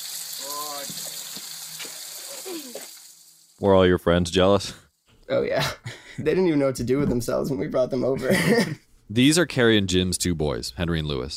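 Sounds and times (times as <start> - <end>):
cold water being sprayed over an animal: 0.0 - 4.4
speech: 2.5 - 3.0, 3.6 - 11.3
laughter: 8.1 - 8.8.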